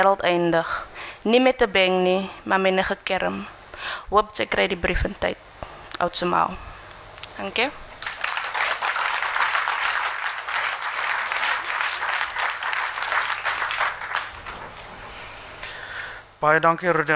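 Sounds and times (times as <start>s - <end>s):
speech: 0.0s - 6.7s, 7.4s - 7.8s, 16.4s - 17.1s
audience applause: 8.0s - 14.6s.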